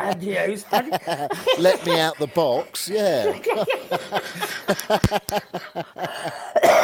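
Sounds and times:
laughter: 0:00.0 - 0:06.5
speech: 0:00.0 - 0:06.8
person coughing: 0:06.3 - 0:06.8
throat clearing: 0:06.6 - 0:06.8.

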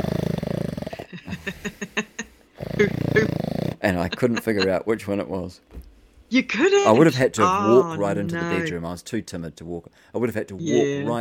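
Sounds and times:
human voice imitating snoring: 0:00.0 - 0:01.1, 0:02.6 - 0:04.4
laughter: 0:01.1 - 0:02.2, 0:02.8 - 0:04.8, 0:06.9 - 0:08.7
speech: 0:01.5 - 0:01.9, 0:02.8 - 0:03.0, 0:03.9 - 0:11.1.

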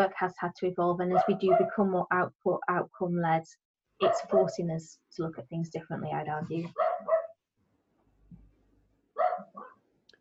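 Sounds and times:
speech: 0:00.0 - 0:07.1
male dog barking: 0:01.1 - 0:01.8, 0:04.0 - 0:04.6, 0:06.7 - 0:07.4, 0:09.2 - 0:09.8.

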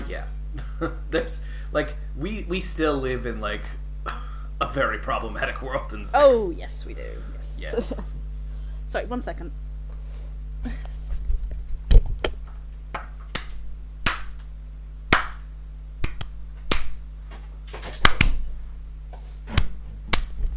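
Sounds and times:
low steady hum: 0:00.0 - 0:20.5
speech: 0:00.1 - 0:08.2, 0:08.9 - 0:09.6, 0:10.6 - 0:10.9
sharp hand claps marking an edit point: 0:11.9 - 0:14.5, 0:15.1 - 0:17.0, 0:18.0 - 0:18.4, 0:19.6 - 0:20.4.

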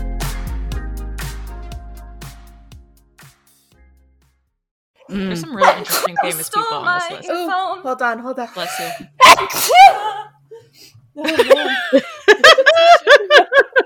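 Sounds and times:
people laughing: 0:05.1 - 0:07.2, 0:11.2 - 0:13.8
people talking: 0:05.1 - 0:09.0
person sneezing: 0:08.8 - 0:10.2.

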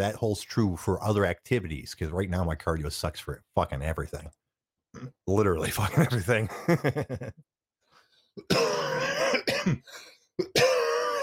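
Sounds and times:
speech: 0:00.0 - 0:04.4, 0:05.0 - 0:07.5, 0:08.4 - 0:10.7
laughter: 0:05.6 - 0:07.4
harsh throaty raspy coughing from a person with a bad cough: 0:08.4 - 0:11.2.

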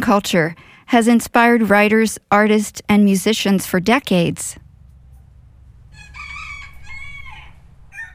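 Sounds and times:
speech: 0:00.0 - 0:04.6
steady low rumble of noise: 0:00.0 - 0:08.1
rooster crowing: 0:05.9 - 0:08.1.

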